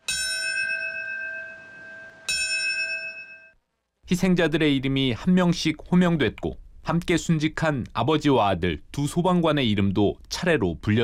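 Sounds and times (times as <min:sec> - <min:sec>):
memorial bell strikes at a September 11 commemoration ceremony: 0:00.0 - 0:03.6
speech: 0:04.1 - 0:11.0.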